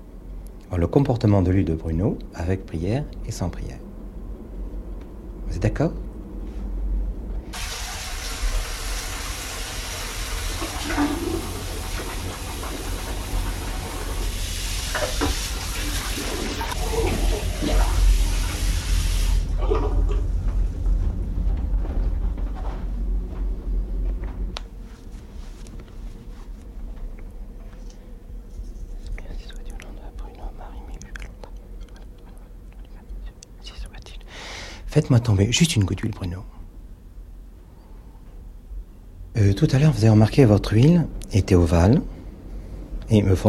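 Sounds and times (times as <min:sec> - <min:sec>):
low noise: 0:00.0 - 0:14.1, 0:15.0 - 0:43.4
speech: 0:00.7 - 0:03.8, 0:05.5 - 0:06.1, 0:35.0 - 0:36.6, 0:39.6 - 0:42.1, 0:43.1 - 0:43.4
clean water poured into a container: 0:07.6 - 0:20.2.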